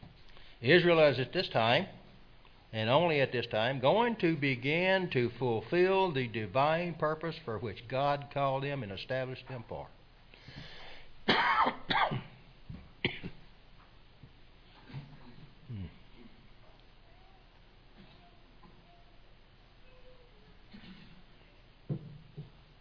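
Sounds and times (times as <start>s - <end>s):
speech: 0.6s - 2.0s, 2.7s - 10.0s
harsh coughs from a throat dried out by dry weather: 11.3s - 12.3s, 13.0s - 13.4s
throat clearing from a throat dried out by dry weather: 14.8s - 16.4s, 20.7s - 21.3s.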